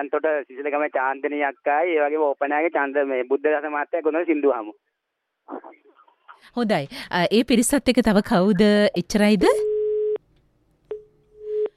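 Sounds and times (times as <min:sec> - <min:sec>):
speech: 0:00.0 - 0:04.9, 0:05.5 - 0:09.7
telephone busy tone as a call disconnects: 0:09.6 - 0:10.2, 0:10.9 - 0:11.7.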